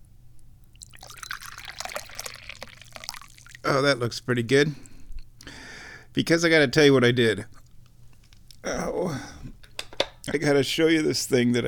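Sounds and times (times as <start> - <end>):
faint low hum: 0.0 - 11.6
tea pouring into a cup: 0.8 - 3.8
speech: 3.7 - 4.9, 6.2 - 7.6, 10.3 - 11.6.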